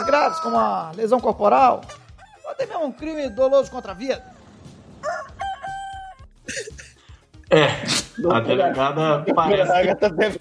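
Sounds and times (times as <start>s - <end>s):
rooster crowing: 0.0s - 0.8s, 2.0s - 6.3s
speech: 0.1s - 2.0s, 2.6s - 4.3s, 7.5s - 10.4s
laughter: 6.5s - 10.4s.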